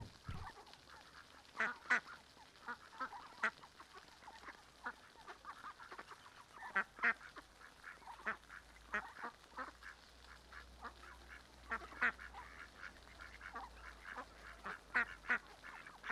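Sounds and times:
Mallard Anas platyrhynchos quacks and chatter in a river park: 0:00.0 - 0:16.1.

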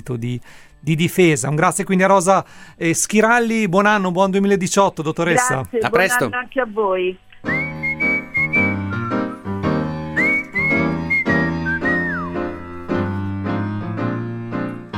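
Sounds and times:
speech: 0:00.0 - 0:07.6
instrumental accompaniment of repeated chords: 0:07.3 - 0:14.9
whistled tune: 0:07.4 - 0:13.1.

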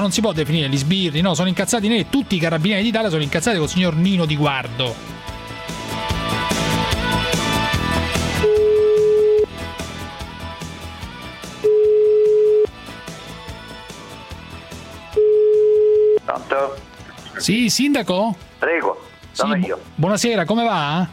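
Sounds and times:
speech: 0:00.0 - 0:05.2, 0:17.4 - 0:21.1
busy music: 0:00.0 - 0:21.1
telephone call ringing beeps: 0:08.4 - 0:09.5, 0:11.6 - 0:12.7, 0:15.1 - 0:16.2.

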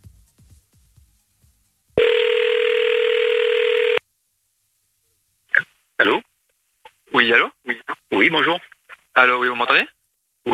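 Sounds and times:
telephone dial tone: 0:02.0 - 0:04.0
speech: 0:07.2 - 0:10.5.

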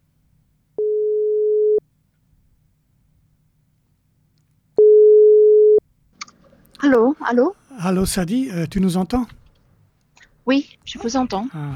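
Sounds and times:
telephone ringback tones on a call placed to a boat: 0:00.8 - 0:01.8, 0:04.8 - 0:05.8
speech: 0:06.8 - 0:09.4, 0:10.5 - 0:11.7.

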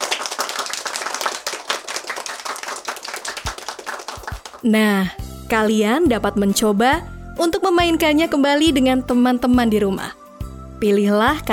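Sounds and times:
many young children clapping hands after a game in an early-childhood lesson: 0:00.0 - 0:04.7
speech: 0:04.6 - 0:10.2, 0:10.8 - 0:11.5.

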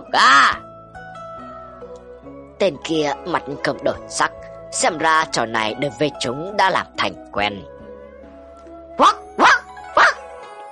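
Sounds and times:
speech: 0:00.1 - 0:00.6, 0:02.6 - 0:07.7, 0:09.0 - 0:09.2
big dog barking: 0:09.0 - 0:10.2.

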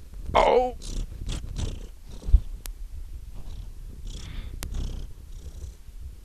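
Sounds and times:
female domestic cat purring during a tummy rub: 0:00.6 - 0:02.6, 0:03.4 - 0:05.8.

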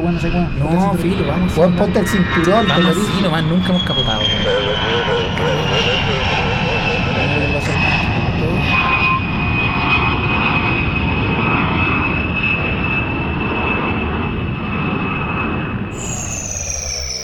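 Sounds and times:
airplane engine drone during landing: 0:00.0 - 0:17.2
speech: 0:00.1 - 0:06.4
high whining tone: 0:00.5 - 0:12.4, 0:15.9 - 0:17.2.

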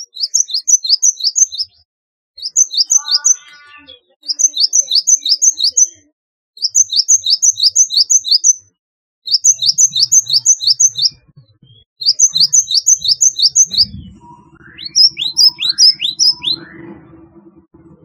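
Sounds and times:
Java sparrow chirping: 0:00.0 - 0:01.8, 0:02.4 - 0:16.7
faint low rumble: 0:13.5 - 0:18.0.

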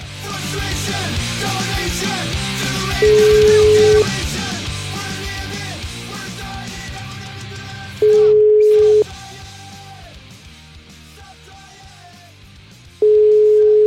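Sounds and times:
music: 0:00.0 - 0:13.8
telephone ringing tones as a radio show places a call: 0:03.0 - 0:04.1, 0:08.0 - 0:09.0, 0:13.0 - 0:13.8.

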